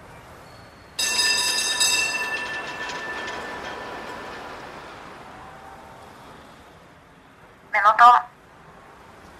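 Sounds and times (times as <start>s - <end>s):
round-cabin tram taxi wheels screeching: 0.5s - 7.1s
speech: 8.0s - 8.3s.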